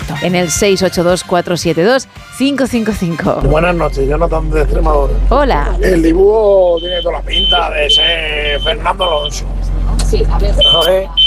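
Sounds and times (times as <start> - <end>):
speech: 0.1 - 11.2
shrill electronic alarm beeping: 5.2 - 9.5, 10.2 - 11.2
phone-line voice talking: 6.8 - 9.4.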